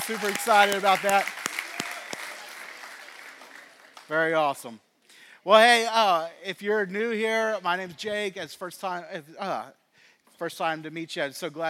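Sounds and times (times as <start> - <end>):
small church audience clapping for newborn babies: 0.0 - 4.5
speech: 0.1 - 1.4, 4.1 - 4.8, 5.4 - 9.8, 10.4 - 11.6.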